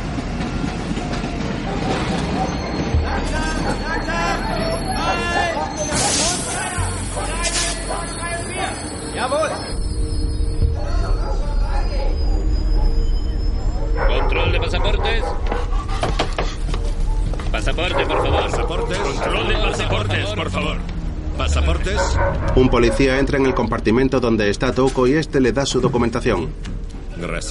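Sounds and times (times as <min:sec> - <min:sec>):
train wheels clickety-clack: 0:00.0 - 0:05.0, 0:14.7 - 0:20.3
train wheel squeal: 0:00.0 - 0:20.5
train arriving at a station: 0:00.0 - 0:27.4
speech: 0:22.8 - 0:26.7.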